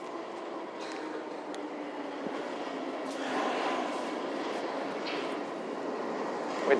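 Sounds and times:
London Underground train approaching: 0.0 - 6.7.

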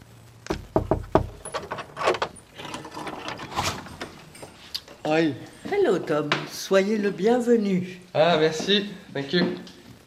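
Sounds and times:
sharp knocks on the wooden door of a house: 0.5 - 1.4
rattling and clattering of a door being handled: 0.6 - 4.6
speech: 5.1 - 9.8.

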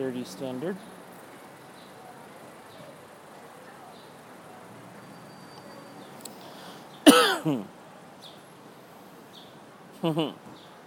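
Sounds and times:
speech: 0.0 - 1.0, 7.4 - 7.8, 10.0 - 10.6
house sparrows chirping at an airport: 0.6 - 7.1, 8.2 - 8.6, 9.2 - 10.8
person clearing throat: 7.1 - 7.7.

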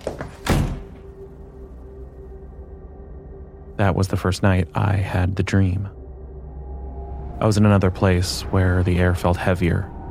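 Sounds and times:
bedroom door slamming shut: 0.3 - 1.1
speech: 3.8 - 6.0, 7.4 - 9.9.

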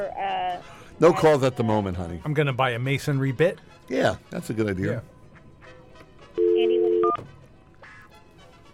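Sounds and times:
speech: 0.0 - 5.1
telephone dial tone: 6.4 - 7.2.

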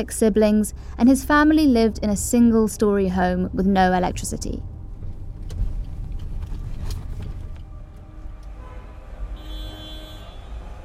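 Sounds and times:
speech: 0.0 - 4.7
engine drone of passing vehicles: 0.0 - 10.8
street traffic rumble in a busy Indian town: 0.0 - 10.8
rising horn-like whine: 6.4 - 10.8.

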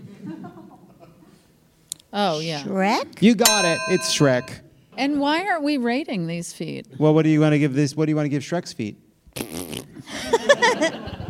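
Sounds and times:
speech: 2.1 - 9.5
buzzy wavering fart sound effect: 9.4 - 10.0.

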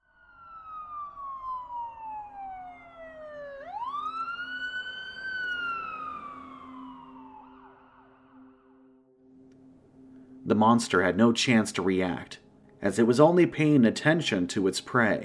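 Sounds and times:
wailing emergency siren: 0.0 - 11.2
speech: 10.5 - 15.2.

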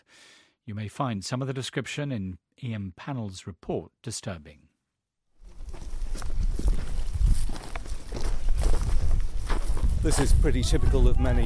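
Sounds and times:
speech: 0.7 - 4.7, 10.0 - 11.4
footsteps crunching through an olive grove: 5.4 - 11.4.

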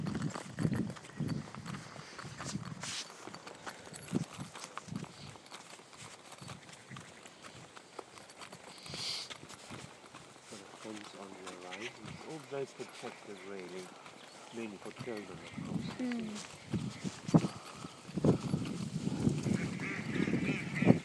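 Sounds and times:
outdoor noise: 0.0 - 21.0
people talking: 10.5 - 13.9, 14.6 - 16.5
duck quacking: 19.6 - 21.0.

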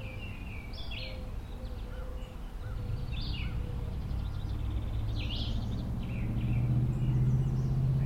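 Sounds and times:
doves calling by the Turkey River: 0.0 - 5.6
birds chirping and singing by a river: 0.0 - 8.0.

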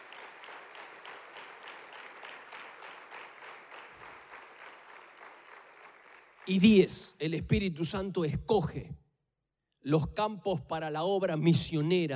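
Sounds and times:
crowd clapping: 0.0 - 7.6
speech: 6.5 - 9.0, 9.8 - 12.1.

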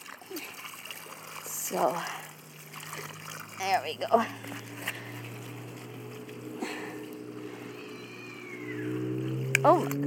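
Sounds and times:
steady low hum: 1.0 - 10.0
speech: 1.7 - 2.2, 3.6 - 5.0, 9.6 - 10.0
cat yowling: 7.5 - 9.5.

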